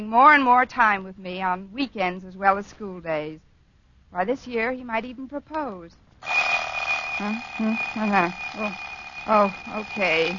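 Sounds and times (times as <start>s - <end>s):
speech: 0.0s - 3.5s, 4.1s - 6.4s, 7.2s - 10.3s
alarm clock ringing with a steady high-pitched tone: 6.2s - 10.3s.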